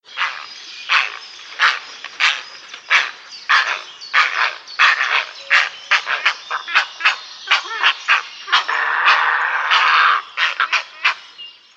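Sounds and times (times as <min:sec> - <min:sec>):
heron call: 0:00.2 - 0:11.3.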